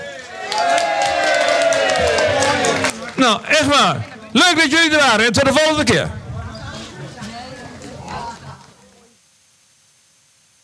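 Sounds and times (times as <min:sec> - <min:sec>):
choir clapping for the audience: 0:00.0 - 0:04.2
crowd murmur: 0:00.0 - 0:09.2
speech: 0:03.2 - 0:06.2.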